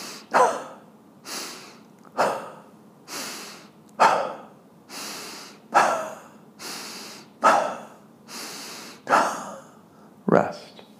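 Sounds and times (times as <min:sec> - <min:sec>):
soft inhales in a breathing exercise: 0:00.0 - 0:00.3, 0:01.2 - 0:03.8, 0:04.9 - 0:05.8, 0:06.6 - 0:09.1
sharp forceful exhales pushed from the stomach in a breathing exercise: 0:00.0 - 0:00.6, 0:01.2 - 0:10.1.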